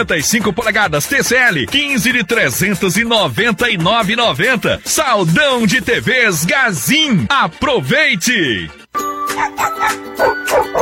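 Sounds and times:
speech: 0.0s - 10.7s
dog barking in sharp yaps: 9.4s - 10.7s.

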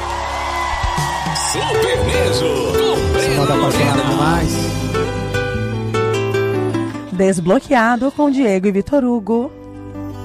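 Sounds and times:
audience shouting and whooping after a live song: 0.0s - 3.9s
dense wall of cheering voices: 0.0s - 6.0s
speech: 1.5s - 5.1s, 7.2s - 9.6s.

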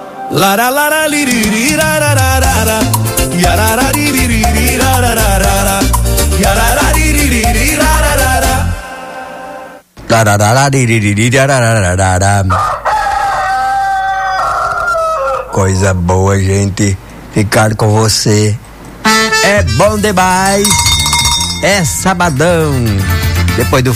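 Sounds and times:
speech: 0.3s - 5.4s, 10.1s - 12.9s, 15.6s - 20.9s, 21.6s - 23.9s
upbeat music: 1.2s - 9.1s, 19.1s - 23.9s
rooster crowing: 12.5s - 15.6s.

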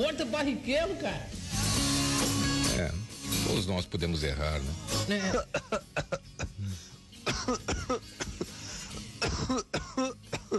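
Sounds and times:
speech: 0.0s - 1.4s, 2.2s - 6.3s
harsh coughing fits: 5.2s - 10.5s
throat clearing: 5.3s - 8.5s, 9.2s - 10.5s.

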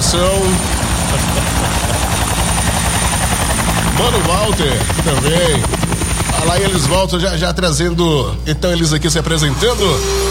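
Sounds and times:
helicopter rotor chopping and engine whining while lifting off: 0.0s - 10.2s
speech: 0.1s - 2.0s, 4.0s - 5.8s, 6.4s - 10.2s
laughter: 0.8s - 2.8s.

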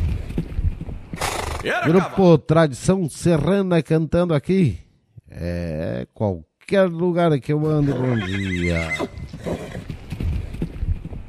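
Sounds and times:
horse hooves clip-clopping: 0.0s - 1.6s, 8.1s - 11.2s
speech: 1.6s - 9.6s
horse neighing: 7.8s - 9.9s.

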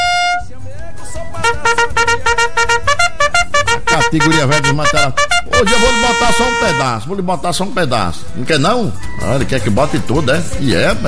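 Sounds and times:
loud sustained horn blast: 0.0s - 0.6s, 1.4s - 7.1s
speech: 4.1s - 11.0s.

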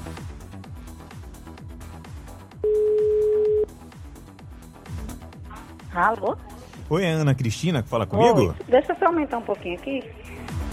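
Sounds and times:
rhythmic music: 0.0s - 10.7s
outgoing phone call ringing tone beep: 2.6s - 3.7s
speech: 6.0s - 10.3s.

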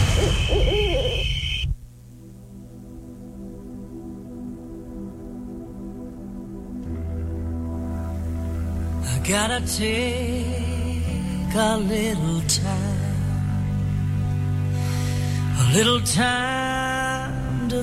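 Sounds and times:
owl hooting: 0.0s - 1.8s
noisy hissing noise: 0.0s - 17.0s
steady sustained musical tones: 0.0s - 17.8s
speech: 9.3s - 10.7s, 11.6s - 13.0s, 15.7s - 17.0s.

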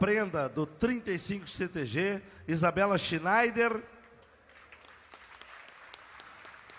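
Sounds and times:
speech: 0.0s - 4.0s
crowd applauding: 4.2s - 6.7s.

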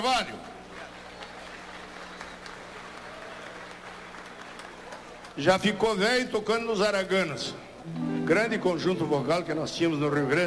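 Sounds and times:
speech: 0.0s - 0.6s, 5.4s - 10.4s
audience applause: 0.7s - 5.4s.

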